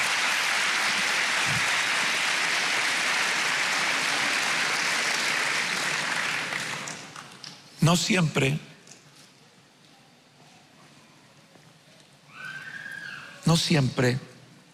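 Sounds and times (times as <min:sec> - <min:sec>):
large crowd clapping in dense applause: 0:00.0 - 0:07.4
speech: 0:07.9 - 0:08.7, 0:13.5 - 0:14.3.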